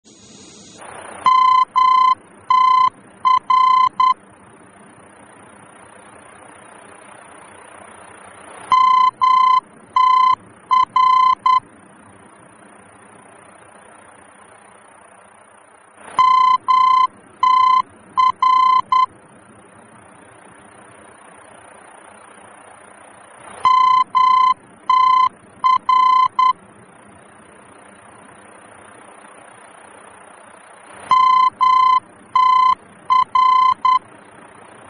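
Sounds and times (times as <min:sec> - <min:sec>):
VOR aeronautical radio beacon morse tones in Germany: 0:00.1 - 0:04.2, 0:08.7 - 0:11.6, 0:16.2 - 0:19.1, 0:23.6 - 0:26.6, 0:31.1 - 0:34.1.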